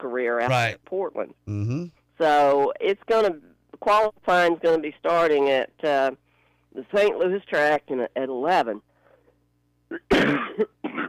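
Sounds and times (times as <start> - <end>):
speech: 0.0 - 8.9, 9.9 - 10.8
person with a nasty cough coughing: 9.9 - 11.0.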